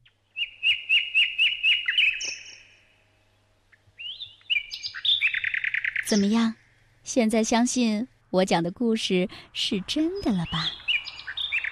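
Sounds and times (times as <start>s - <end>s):
nightingale singing: 0.0s - 3.0s, 3.7s - 6.6s, 10.2s - 11.7s
speech: 6.1s - 10.8s.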